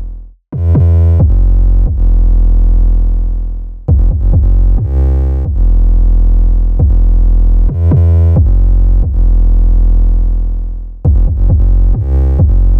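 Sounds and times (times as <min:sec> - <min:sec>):
kick drum: 0:00.5 - 0:02.2, 0:03.9 - 0:05.8, 0:06.7 - 0:09.4, 0:11.0 - 0:12.7
drill beat with 808 bass: 0:00.5 - 0:12.7.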